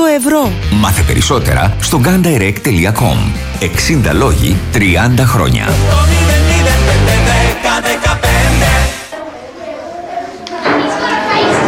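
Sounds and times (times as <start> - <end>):
speech: 0.2 - 6.4
loud tonal musical passage: 0.6 - 9.0
classroom of children chattering and calling out: 9.1 - 11.6.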